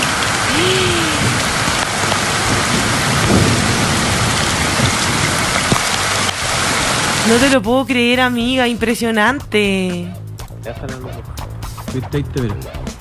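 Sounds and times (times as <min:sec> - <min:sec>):
thunder rumbling and cracking: 0:00.0 - 0:07.7
heavy rain in a thunderstorm: 0:00.0 - 0:08.2
speech: 0:07.3 - 0:12.9.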